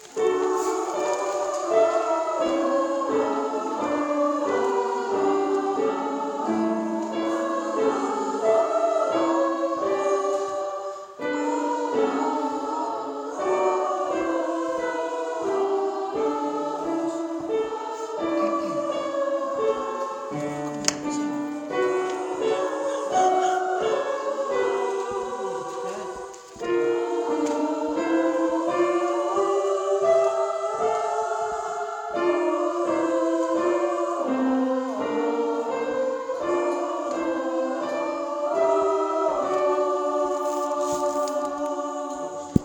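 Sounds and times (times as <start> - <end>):
soprano voice singing ah: 0.0 - 42.6.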